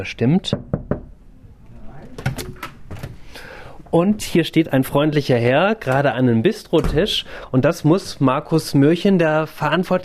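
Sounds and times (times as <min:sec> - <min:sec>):
speech: 0:00.0 - 0:00.8, 0:03.9 - 0:10.0
knocking on a door: 0:00.5 - 0:01.1
door being opened: 0:02.1 - 0:03.2.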